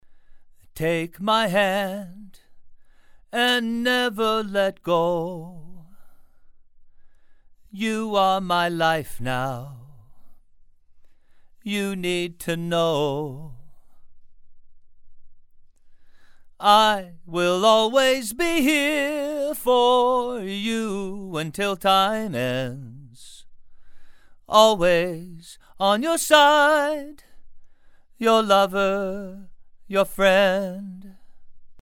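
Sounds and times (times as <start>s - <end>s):
male vocals: 0.7s - 2.5s, 3.3s - 6.0s, 7.8s - 10.3s, 11.6s - 13.9s, 16.6s - 23.4s, 24.5s - 27.3s, 28.2s - 31.2s.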